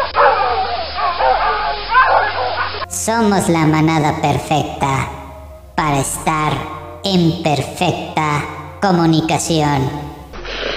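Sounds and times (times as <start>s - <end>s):
dog barking and yipping: 0.0s - 2.9s
speech: 3.1s - 5.2s, 5.8s - 10.1s.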